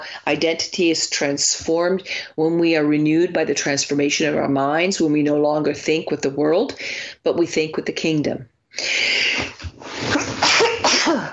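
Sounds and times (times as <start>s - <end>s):
speech: 0.2s - 10.4s
person sneezing: 9.2s - 11.3s.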